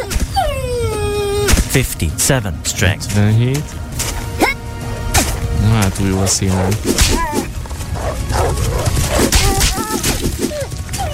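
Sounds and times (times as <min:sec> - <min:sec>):
dog yelping and whimpering as a rhinoceros kills it in a video game: 0:00.0 - 0:01.5, 0:08.4 - 0:11.1
busy video game sound: 0:00.0 - 0:11.1
speech: 0:01.8 - 0:03.8, 0:05.6 - 0:07.4.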